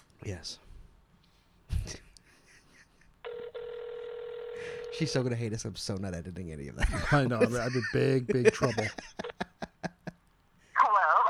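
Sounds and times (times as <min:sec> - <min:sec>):
speech: 0:00.2 - 0:00.6, 0:05.0 - 0:09.2
phone ringback tone on an outgoing call: 0:03.3 - 0:05.1
laughter: 0:06.8 - 0:10.2.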